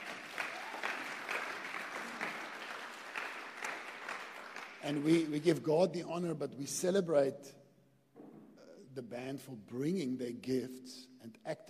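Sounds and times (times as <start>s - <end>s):
crowd clapping at a church worship service: 0.0s - 5.6s
speech: 4.8s - 7.6s, 9.0s - 11.6s.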